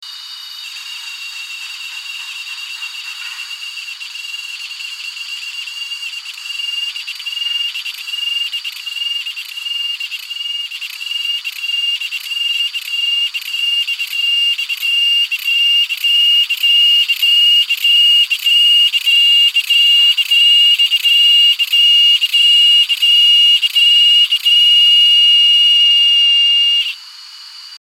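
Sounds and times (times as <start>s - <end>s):
Chremistica pontianaka cicada calling: 0.1s - 24.8s, 25.8s - 27.8s.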